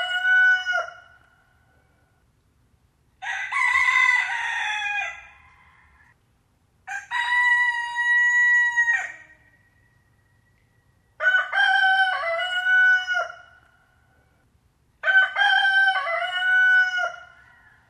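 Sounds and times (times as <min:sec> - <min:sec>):
male chicken rooster crowing: 0:00.0 - 0:01.1, 0:03.2 - 0:06.2, 0:06.9 - 0:09.5, 0:11.2 - 0:13.5, 0:15.0 - 0:17.8.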